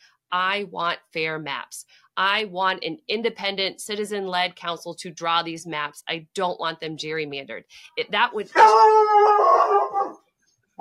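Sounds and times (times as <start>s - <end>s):
speech: 0.3s - 10.0s
dog howling at a household pet: 8.6s - 10.2s.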